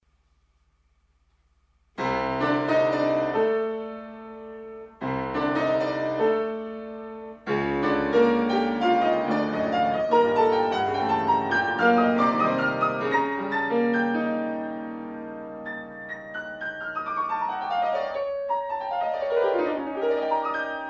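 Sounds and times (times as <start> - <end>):
piano fantasia: 2.0 - 20.8.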